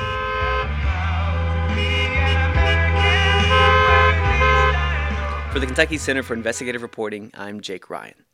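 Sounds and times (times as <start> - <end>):
car horns honking in a church parking lot: 0.0 - 1.0, 1.6 - 6.3
cars pulling out of a church parking lot after a sermon: 0.0 - 6.5
speech: 5.5 - 8.3.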